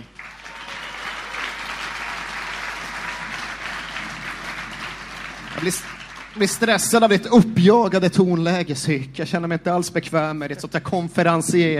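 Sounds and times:
crowd applauding to welcome two guests: 0.0 - 7.2
speech: 5.6 - 11.7.

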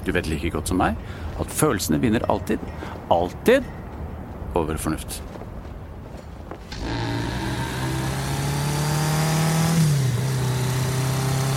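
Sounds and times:
speech: 0.0 - 3.8, 4.5 - 5.4
car engine droning while driven: 6.7 - 11.5.

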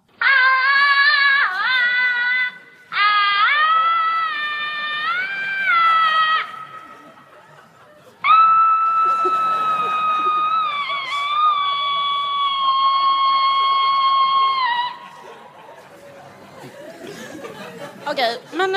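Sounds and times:
person imitating a woman's shrill wavering scream: 0.2 - 6.7, 8.2 - 15.0
laughter: 4.4 - 18.6.

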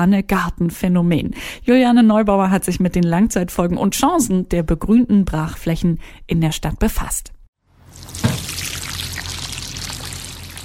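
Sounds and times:
speech: 0.0 - 7.4
water pouring onto young tomato plants in a greenhouse: 7.8 - 10.6.

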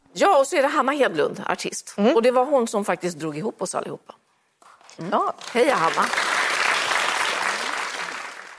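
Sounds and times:
speech: 0.2 - 4.2, 5.0 - 6.3
studio audience applause: 5.4 - 8.5.

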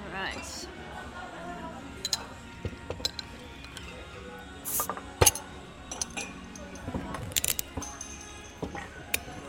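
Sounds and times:
faint murmur: 0.0 - 9.4
soju and beer bottles clinking: 2.0 - 9.4
soju and beer bottle caps popping open: 4.6 - 6.4, 7.1 - 9.4.

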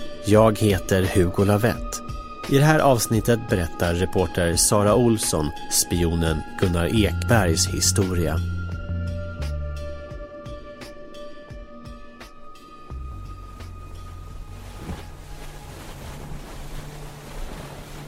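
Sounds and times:
speech: 0.2 - 8.6
outboard engine droning: 12.7 - 18.0
small rubber dinghy slapping over choppy sea waves: 13.2 - 18.0
rushing sea water: 13.4 - 18.0
wind buffeting the microphone: 13.4 - 18.0.

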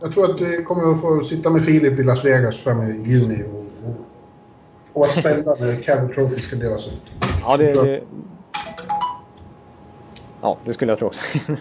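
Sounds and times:
speech: 0.0 - 4.1, 5.0 - 8.4, 10.4 - 11.6
faint hum: 0.0 - 11.6
mobile phone text message alert chime: 8.6 - 9.3.

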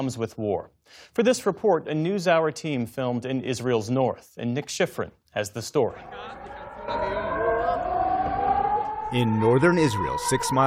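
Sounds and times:
speech: 0.0 - 7.0, 9.1 - 10.6
civil defense air raid siren in northern Israel near the Lebanese border: 5.9 - 10.6.

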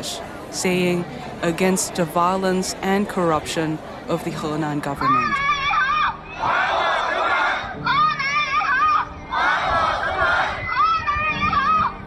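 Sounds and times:
speech: 0.1 - 5.5, 6.4 - 6.8
large protest crowd chanting slogans in unison: 3.2 - 11.4
people shouting: 5.1 - 11.9.

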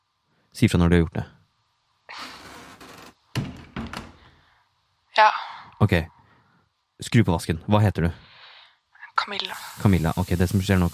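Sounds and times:
speech: 0.6 - 1.4, 5.8 - 6.2, 7.0 - 8.3, 9.2 - 10.9
bathroom door swishing shut with a solid thunk: 2.2 - 4.3.

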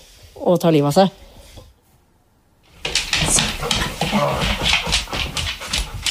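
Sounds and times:
speech: 0.4 - 1.2
dogs running in circles on a hard floor: 2.7 - 6.0.

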